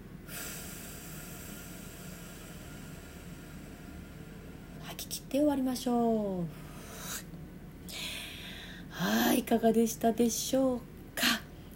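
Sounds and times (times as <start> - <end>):
slow deep exhale during a relaxing breathing exercise: 0.2 - 4.8, 7.9 - 9.0
speech: 4.9 - 6.6, 9.4 - 10.9.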